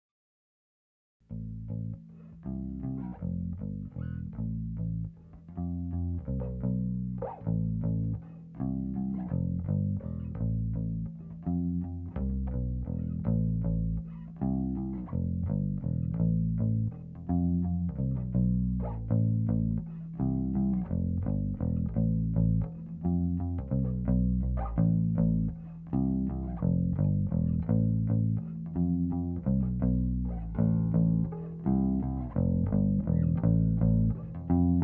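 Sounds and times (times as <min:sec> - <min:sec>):
mono DI line bass guitar: 0:01.3 - 0:34.8.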